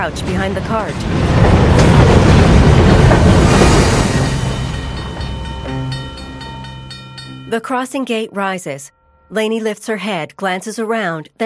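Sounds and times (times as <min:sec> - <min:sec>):
speech: 0:00.0 - 0:02.8, 0:07.5 - 0:11.4
train rolling into a rail yard, wheels on track: 0:00.0 - 0:07.5.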